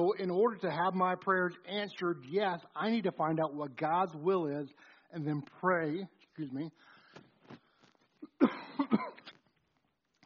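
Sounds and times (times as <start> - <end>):
speech: 0.0 - 6.9
person coughing: 8.2 - 9.4.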